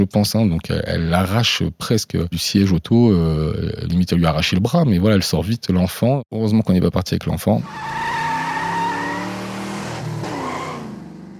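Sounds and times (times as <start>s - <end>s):
speech: 0.0s - 8.0s
powerful car engine roaring off along the road: 7.6s - 11.3s
tires skidding with high squeal: 7.6s - 11.3s.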